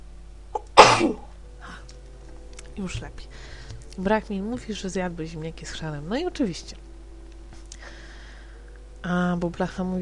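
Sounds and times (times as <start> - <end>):
person sneezing: 0.6 - 1.3
speech: 1.0 - 1.3, 2.8 - 6.9, 9.0 - 10.0.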